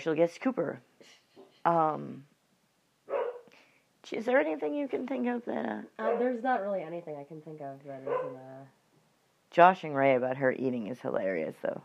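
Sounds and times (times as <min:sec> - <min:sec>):
speech: 0:00.0 - 0:02.3, 0:04.0 - 0:08.8, 0:09.5 - 0:11.8
dog barking: 0:03.1 - 0:03.5, 0:06.0 - 0:06.4, 0:08.0 - 0:08.5.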